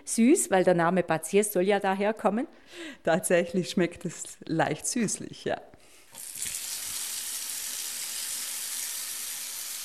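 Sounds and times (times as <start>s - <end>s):
speech: 0.0s - 5.7s
strong jet of spring water gushing into a bathtub at a bathhouse: 6.1s - 9.8s.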